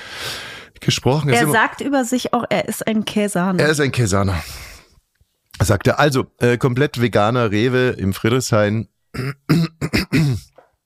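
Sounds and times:
speech: 0:00.8 - 0:04.7, 0:05.6 - 0:10.5
person clearing throat: 0:09.2 - 0:10.6.

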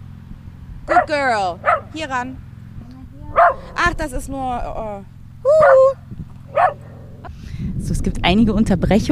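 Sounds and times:
low outdoor rumble: 0:00.0 - 0:09.0
dog barks: 0:00.9 - 0:02.0, 0:03.3 - 0:03.9, 0:05.6 - 0:07.3
speech: 0:01.0 - 0:02.5, 0:03.6 - 0:06.8, 0:07.6 - 0:09.0.

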